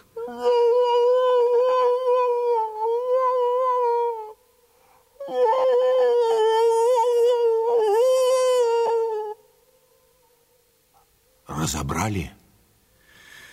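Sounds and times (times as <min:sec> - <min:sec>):
person imitating a wolf howl with palms cupped at the mouth: 0:00.2 - 0:04.4, 0:05.2 - 0:09.4
speech: 0:11.7 - 0:12.4.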